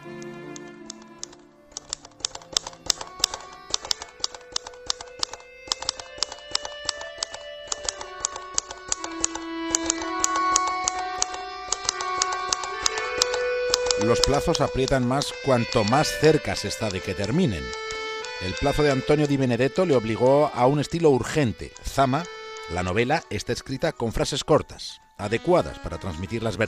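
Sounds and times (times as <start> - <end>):
typewriter keys clattering: 1.3 - 15.0
soft sustained musical tone: 2.8 - 26.6
speech: 14.1 - 17.8, 18.4 - 26.6.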